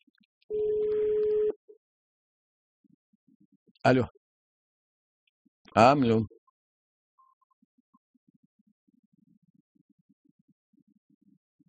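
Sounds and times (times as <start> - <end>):
telephone line tone for an incoming call: 0.5 - 1.6
speech: 3.8 - 4.2, 5.8 - 6.4.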